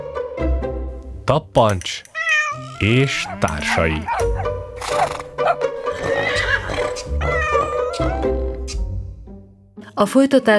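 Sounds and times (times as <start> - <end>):
steady low tonal backdrop: 0.0 - 10.5
speech: 1.3 - 4.3, 4.9 - 7.3, 10.0 - 10.5
horse neighing: 2.2 - 8.8.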